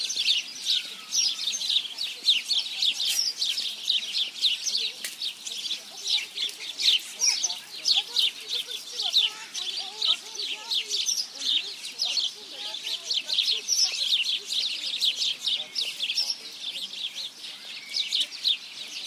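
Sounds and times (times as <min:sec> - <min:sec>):
flock of house sparrows (Passer domesticus) chirping: 0:00.0 - 0:19.0.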